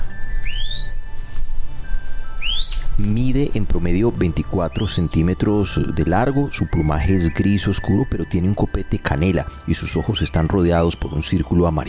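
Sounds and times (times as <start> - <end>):
chestnut-capped piha Lipaugus weberi whistling song: 0.0 - 1.4, 2.2 - 3.0, 4.6 - 5.8
speech: 3.1 - 11.8.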